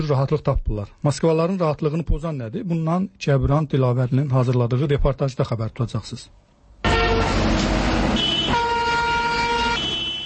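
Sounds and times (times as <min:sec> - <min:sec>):
speech: 0:00.0 - 0:06.4
dense engine and road noise of city traffic in Moscow: 0:06.4 - 0:10.2
car horns blaring in city traffic in Moscow: 0:06.8 - 0:10.2.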